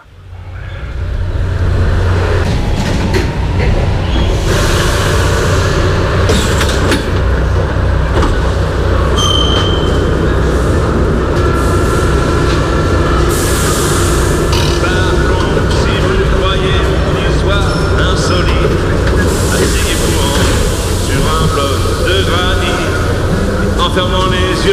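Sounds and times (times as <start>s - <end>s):
metro train rumbling: 0.0s - 24.7s
brief high metallic squeal: 9.2s - 10.1s.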